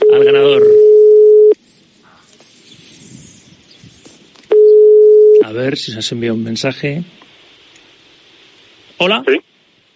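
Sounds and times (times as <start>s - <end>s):
telephone ringback tone: 0.0s - 1.6s, 4.5s - 5.4s
faint telephone line hiss: 0.0s - 9.9s
speech: 0.2s - 0.8s, 5.6s - 7.2s, 9.0s - 9.5s.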